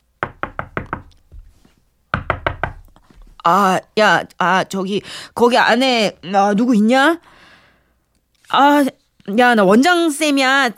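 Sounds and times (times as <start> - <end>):
faint room noise: 0.0 - 10.7
knocking on a bathroom door: 0.2 - 1.5, 2.1 - 2.9
speech: 3.4 - 7.3, 8.5 - 10.7.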